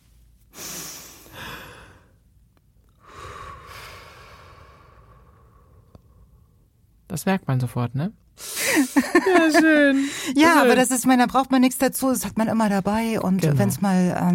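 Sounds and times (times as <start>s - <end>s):
long drawn-out exhalation in a relaxation exercise: 0.5s - 2.2s, 3.0s - 6.5s
slow breathing in a relaxation exercise: 0.5s - 2.3s, 3.0s - 6.8s
speech: 7.2s - 8.2s, 9.0s - 14.3s
laughter: 8.6s - 10.0s.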